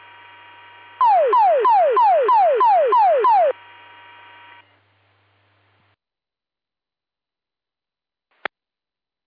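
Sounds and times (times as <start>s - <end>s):
rapidly repeating falling warble sweeps from a fire department pager: 1.0s - 3.5s.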